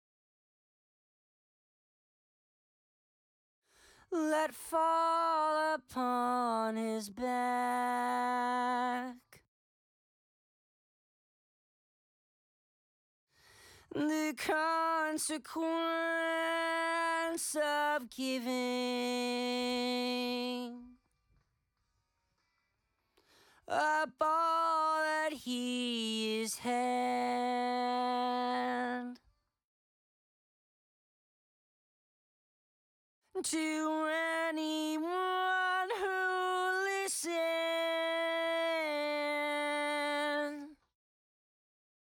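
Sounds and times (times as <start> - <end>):
main vocals: 4.1 - 9.3, 13.9 - 21.0, 23.6 - 29.2, 33.4 - 40.8.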